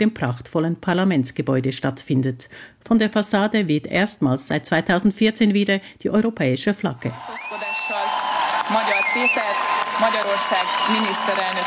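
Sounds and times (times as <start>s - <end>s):
speech: 0.0s - 7.7s, 8.7s - 11.6s
large crowd applauding at parliament: 7.1s - 11.6s
whistles: 7.4s - 9.8s.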